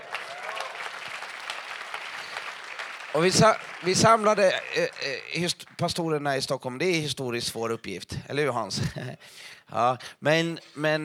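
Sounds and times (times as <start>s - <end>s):
audience applause: 0.0s - 5.5s
speech: 3.1s - 11.0s
laughter: 3.2s - 5.5s.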